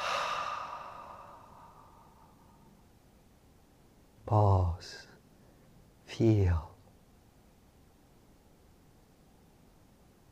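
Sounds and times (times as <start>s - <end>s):
long breathy exhalation during a tense-and-hold breathing exercise: 0.0s - 2.7s
speech: 4.3s - 5.0s, 6.2s - 6.7s.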